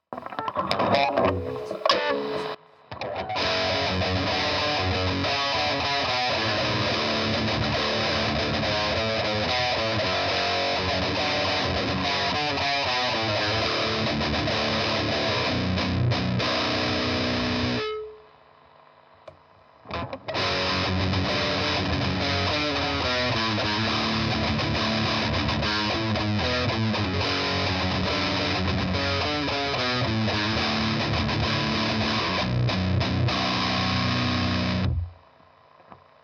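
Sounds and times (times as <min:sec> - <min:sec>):
high-gain heavily distorted electric guitar in split-coil mode: 0:00.0 - 0:18.4, 0:19.9 - 0:35.3.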